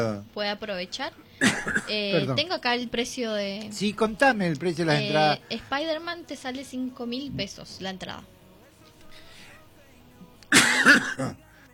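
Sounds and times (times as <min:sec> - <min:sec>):
speech: 0:00.0 - 0:08.3, 0:10.8 - 0:11.7
person coughing harshly: 0:01.4 - 0:02.1, 0:10.5 - 0:11.4.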